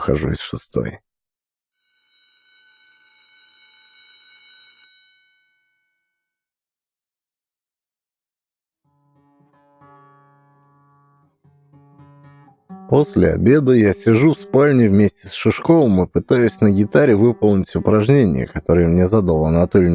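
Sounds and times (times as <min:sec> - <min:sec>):
speech: 0:00.1 - 0:01.1, 0:12.9 - 0:19.9
loud electric school bell ringing: 0:01.8 - 0:05.9
sustained tonal sound: 0:12.7 - 0:19.9.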